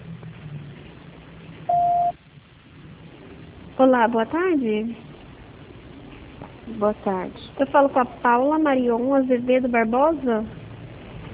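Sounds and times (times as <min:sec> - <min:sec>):
telephone line beep while a call is dialed: 0:01.7 - 0:02.1
speech: 0:03.8 - 0:05.1, 0:06.7 - 0:10.6.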